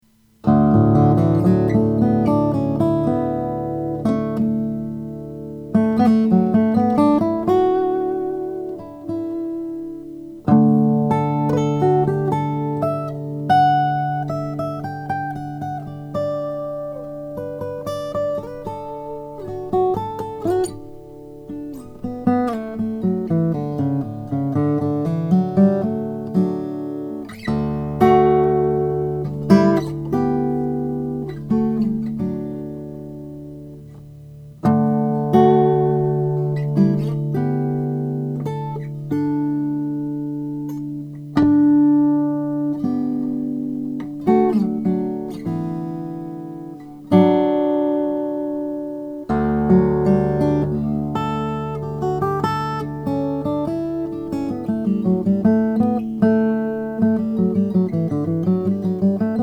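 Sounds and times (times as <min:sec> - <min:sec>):
acoustic guitar with Madagascar rosewood: 0:00.0 - 0:59.4.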